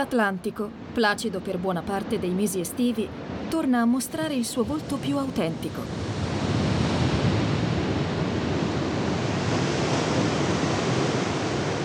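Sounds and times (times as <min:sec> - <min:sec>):
speech: 0:00.0 - 0:06.1
wind buffeting: 0:00.0 - 0:11.8
stormy Atlantic ocean surf pounding a rocky shore: 0:05.8 - 0:11.8.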